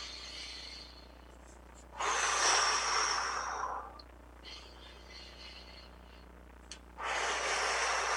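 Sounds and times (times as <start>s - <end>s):
slow deep breathing exercise with hands at the heart: 0.0s - 6.4s, 7.0s - 8.1s
low steady hum: 0.0s - 8.1s.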